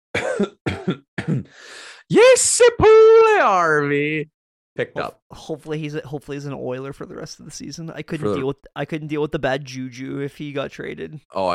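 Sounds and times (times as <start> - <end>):
rough gravelly throat clearing: 0.2 - 1.5
speech: 0.4 - 0.6, 1.4 - 11.5.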